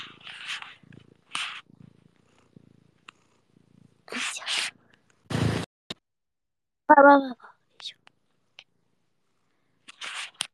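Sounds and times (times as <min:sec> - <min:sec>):
person imitating a cat's purr: 0:00.0 - 0:04.8
speech: 0:06.9 - 0:08.0.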